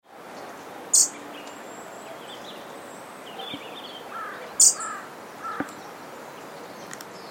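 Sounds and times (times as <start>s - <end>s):
constant hissing background: 0.1s - 7.2s
European robin call notes: 0.9s - 2.6s, 3.2s - 5.8s.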